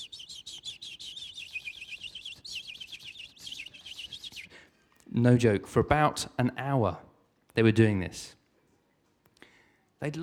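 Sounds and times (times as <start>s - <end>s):
blue tits calling while walking on wooden decking: 0.0s - 4.5s
speech: 5.2s - 8.4s, 10.0s - 10.2s.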